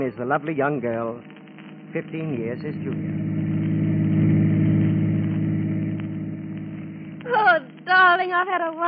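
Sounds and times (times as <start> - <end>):
speech: 0.0 - 3.6, 7.4 - 8.8
chauffeur-driven car engine running: 1.9 - 7.8.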